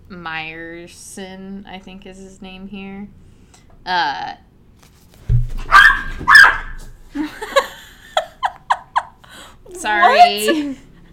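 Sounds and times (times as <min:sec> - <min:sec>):
speech: 0:00.1 - 0:04.5, 0:09.7 - 0:10.9
small castrated dog giving high-pitched squeaky barks: 0:05.7 - 0:06.8
laughter: 0:07.2 - 0:09.4.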